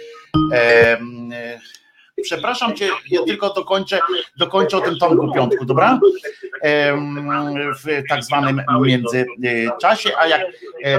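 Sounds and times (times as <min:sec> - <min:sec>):
loud electronic ringtone of bright synthetic tones: 0:00.0 - 0:01.1
speech: 0:00.5 - 0:10.9.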